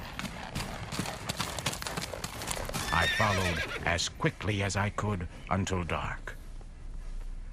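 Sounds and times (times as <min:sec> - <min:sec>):
horse hooves clip-clopping at a quick pace: 0:00.0 - 0:04.8
speech: 0:03.2 - 0:06.4.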